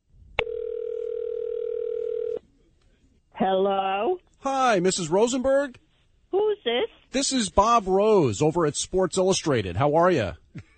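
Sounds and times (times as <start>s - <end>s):
faint hiss: 0.1s - 10.7s
telephone dial tone before a call: 0.4s - 2.4s
speech: 3.4s - 10.7s.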